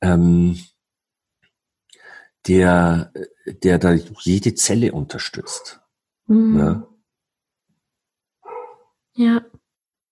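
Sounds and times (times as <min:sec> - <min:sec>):
speech: 0:00.0 - 0:00.7, 0:02.4 - 0:06.9, 0:09.2 - 0:09.5
single dog bark: 0:05.4 - 0:05.8, 0:08.4 - 0:08.9.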